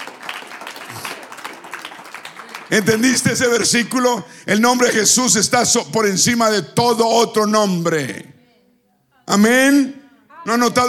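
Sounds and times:
crowd of people applauding: 0.0s - 4.1s
speech: 2.7s - 8.3s, 9.3s - 10.8s.

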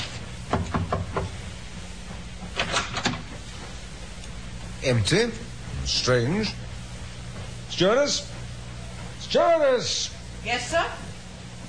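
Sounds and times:
knocking on a wooden cabin door: 0.5s - 1.3s
speech: 4.8s - 6.6s, 7.8s - 8.3s, 9.3s - 11.0s.

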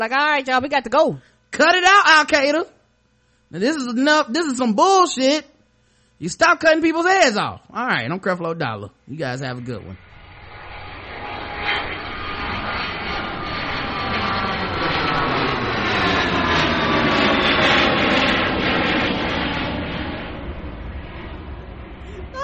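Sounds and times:
speech: 0.0s - 2.8s, 3.5s - 5.5s, 6.2s - 10.1s
airplane jet engine roaring: 9.9s - 22.4s.

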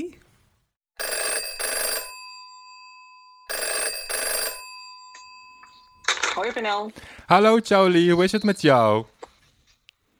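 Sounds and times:
telephone ringing in a classic double-burst bell pattern: 1.0s - 9.1s
speech: 6.4s - 9.1s.

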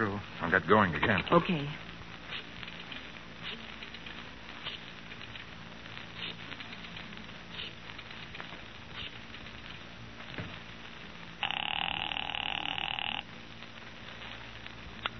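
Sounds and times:
speech: 0.0s - 2.4s
steady crackling rattling noise: 0.0s - 15.1s
telephone ringing in an office: 11.4s - 13.3s.

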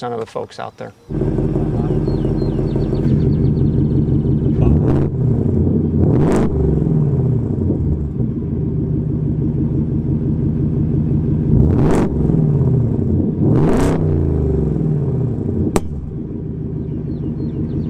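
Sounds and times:
speech: 0.0s - 1.3s
V8 truck engine idling and revving: 1.1s - 17.8s.

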